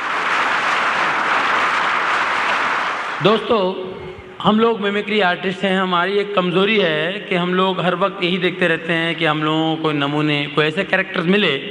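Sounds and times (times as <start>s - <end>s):
audience applause at a comedy and mimicry stage show: 0.0s - 3.4s
speech: 3.2s - 11.6s.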